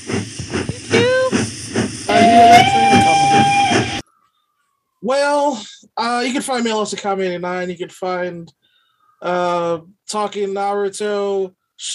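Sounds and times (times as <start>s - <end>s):
steam train chuffing: 0.0s - 4.0s
steam train whistle blast: 2.1s - 4.0s
speech: 5.1s - 8.6s, 9.2s - 11.9s.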